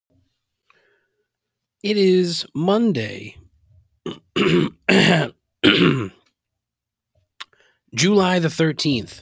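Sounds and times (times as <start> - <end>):
speech: 1.8 - 3.4, 4.4 - 6.2, 7.9 - 9.2
harsh throat clearing to bring up phlegm: 4.1 - 6.3.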